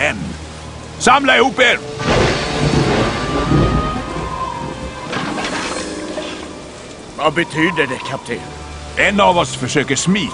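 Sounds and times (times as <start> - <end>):
steady dense rain in a raging storm: 0.0 - 10.3
speech: 1.0 - 2.0, 7.2 - 10.3
deep rolling rumble of thunder: 1.8 - 7.8.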